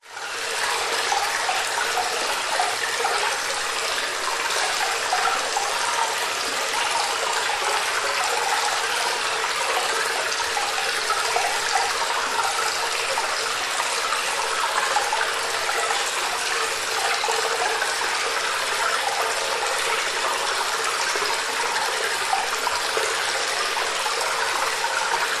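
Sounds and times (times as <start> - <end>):
water running and trickling in a cave: 0.0 - 25.3.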